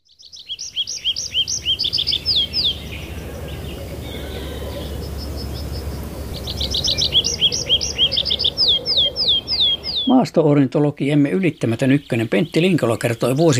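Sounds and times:
tree pipit singing: 0:00.0 - 0:13.5
steady low outdoor rumble: 0:02.2 - 0:08.0
speech: 0:10.1 - 0:13.5.

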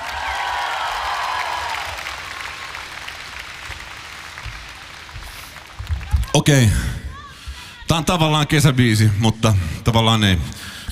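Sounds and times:
audience applause for the drummer: 0:00.0 - 0:07.0
speech: 0:06.4 - 0:07.0, 0:07.9 - 0:10.8.

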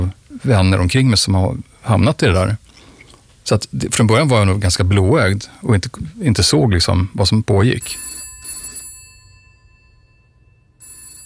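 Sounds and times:
faint low hum: 0:00.0 - 0:11.2
speech: 0:00.4 - 0:02.6, 0:03.4 - 0:08.1
home telephone bell ringing: 0:07.8 - 0:11.2.

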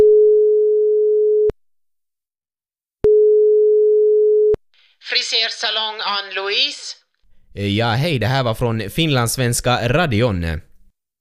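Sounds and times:
telephone line tone as a number is called: 0:00.0 - 0:01.5, 0:03.0 - 0:04.6
speech: 0:05.0 - 0:07.0, 0:07.6 - 0:10.7.

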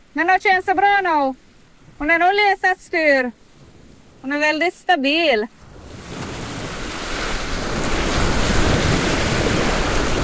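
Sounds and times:
waves lapping around an anchored sailboat at sea: 0:00.0 - 0:10.2
speech: 0:00.2 - 0:01.4, 0:02.0 - 0:03.4, 0:04.2 - 0:05.6
gusty wind buffeting the microphone: 0:01.6 - 0:10.2.

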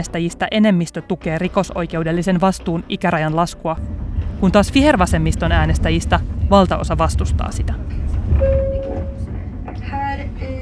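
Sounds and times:
speech: 0:00.0 - 0:08.6
train rumbling on rails: 0:01.8 - 0:10.6
thin tonal whines of a train: 0:03.8 - 0:10.6.

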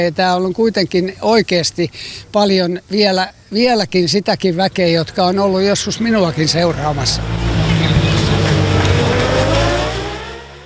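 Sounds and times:
speech: 0:00.0 - 0:07.4
racing motorcycle engines revving at the Imatra races in Finland: 0:05.2 - 0:10.6.

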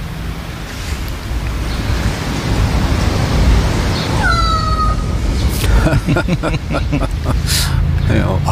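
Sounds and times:
surf: 0:00.0 - 0:08.5
wind: 0:00.0 - 0:08.5
crow giving a meow-like call mimicking a cat: 0:04.2 - 0:05.2
laughter: 0:05.6 - 0:07.8
speech: 0:06.1 - 0:08.5.

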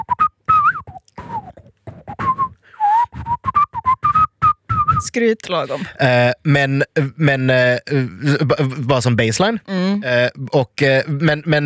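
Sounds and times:
person whistling a short bouncy tune: 0:00.0 - 0:05.1
speech: 0:05.1 - 0:11.6.

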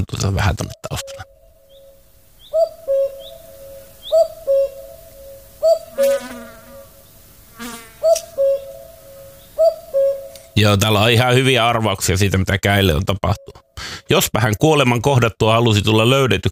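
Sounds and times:
speech: 0:00.0 - 0:01.3, 0:10.6 - 0:16.5
common cuckoo two-note call: 0:00.7 - 0:07.2, 0:08.0 - 0:11.0, 0:13.2 - 0:13.7.

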